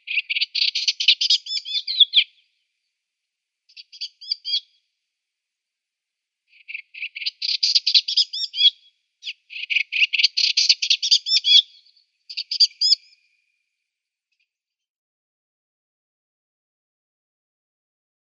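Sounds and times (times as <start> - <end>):
Eastern olivaceous warbler singing: 0.0 - 2.4, 3.7 - 4.8, 6.5 - 13.2.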